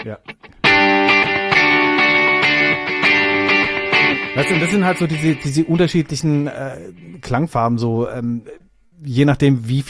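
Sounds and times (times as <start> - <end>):
speech: 0.0 - 0.4, 4.4 - 9.8
electric guitar through a tape-echo delay: 0.0 - 7.3.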